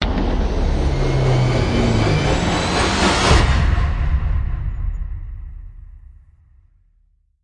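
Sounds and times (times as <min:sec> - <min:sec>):
falling swoosh hit: 0:00.0 - 0:05.5.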